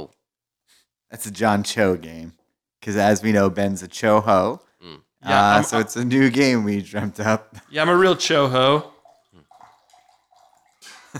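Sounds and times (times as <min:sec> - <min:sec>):
speech: 0:01.1 - 0:08.9
water poured with gurgling splashes: 0:05.4 - 0:11.1.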